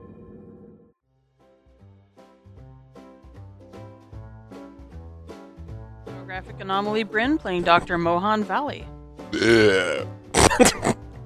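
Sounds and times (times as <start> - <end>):
speech: 6.4 - 10.9
short breathy vocal bursts: 9.3 - 10.5
long loud deep burp: 9.3 - 11.0.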